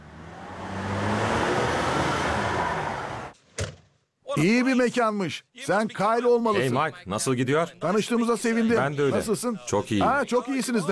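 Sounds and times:
440 V8 engine in a Coronet 500 car with custom exhaust roaring: 0:00.0 - 0:03.4
speech: 0:04.4 - 0:10.9.

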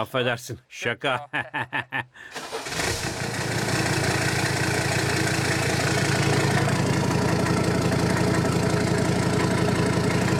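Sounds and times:
speech: 0:00.0 - 0:03.1
laughter: 0:01.1 - 0:02.2
car engine cranked by the starter: 0:02.4 - 0:10.3.

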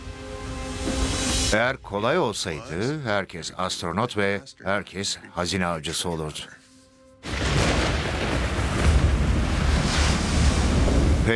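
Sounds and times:
speech: 0:01.5 - 0:06.6
stormy wind at sea heard from inside a boat: 0:07.3 - 0:11.3
waves crashing at sea heard from inside a boat: 0:07.3 - 0:11.3.

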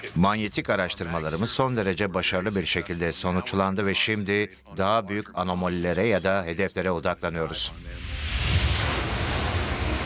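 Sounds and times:
speech: 0:00.0 - 0:08.1
ocean waves breaking over a reef in a strong current: 0:08.4 - 0:10.0.

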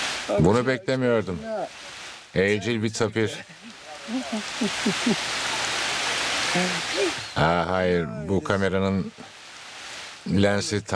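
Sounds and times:
heavy rain in the forest: 0:00.0 - 0:10.9
speech: 0:00.3 - 0:05.5, 0:06.5 - 0:09.3, 0:10.2 - 0:10.9
laughter: 0:03.2 - 0:07.3
voice murmur: 0:03.7 - 0:05.7, 0:06.4 - 0:08.4.

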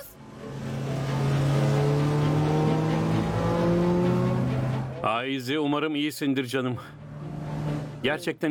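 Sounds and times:
car engine roaring as it accelerates hard: 0:00.2 - 0:05.2, 0:06.8 - 0:08.1
speech: 0:05.2 - 0:07.0, 0:08.0 - 0:08.4.

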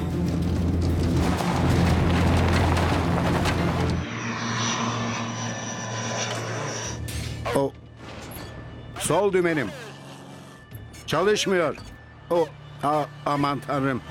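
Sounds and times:
small propeller plane engine roaring at full power taking off: 0:00.0 - 0:07.1
speech: 0:07.6 - 0:07.8, 0:09.1 - 0:09.8, 0:11.1 - 0:14.0.

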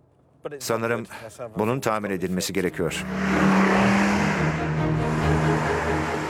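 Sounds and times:
speech: 0:00.4 - 0:06.2
Jaguar coupe engine droning during a video game test drive: 0:02.7 - 0:06.2.

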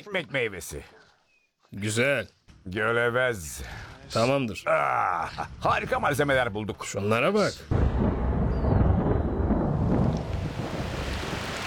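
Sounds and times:
speech: 0:00.0 - 0:01.0, 0:01.7 - 0:08.1
deep rumble of thunder: 0:07.7 - 0:11.6
steady rain pouring: 0:07.7 - 0:11.6.

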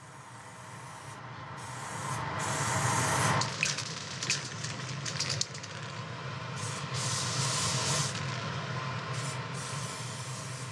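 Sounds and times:
spray paint hissing from an aerosol can onto primed surfaces: 0:00.1 - 0:04.4, 0:06.6 - 0:08.2, 0:09.1 - 0:10.7
faint rattling and handling noises: 0:03.4 - 0:06.0.

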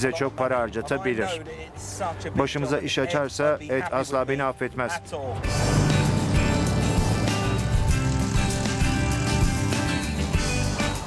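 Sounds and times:
speech: 0:00.0 - 0:05.9
car driving along a coastal road beside the Pacific Ocean: 0:05.4 - 0:10.0.

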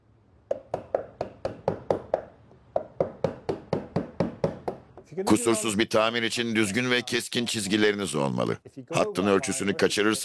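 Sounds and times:
chisel being driven into hardwood mahogany: 0:00.5 - 0:05.1
speech: 0:05.1 - 0:10.2.

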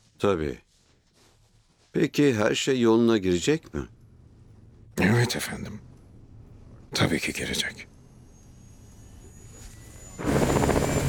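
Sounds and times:
speech: 0:00.2 - 0:00.6, 0:02.0 - 0:04.0, 0:05.0 - 0:05.9, 0:06.9 - 0:07.9
aircraft taking off: 0:08.8 - 0:11.0.

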